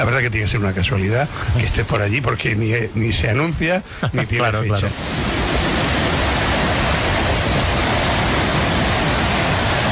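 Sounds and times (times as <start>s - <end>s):
speech: 0.0s - 5.6s
roar of rushing water of a waterfall: 4.7s - 9.9s.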